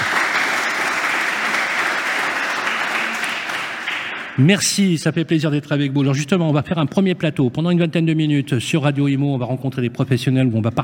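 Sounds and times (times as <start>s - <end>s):
audience applause: 0.0s - 4.5s
speech: 4.4s - 10.8s.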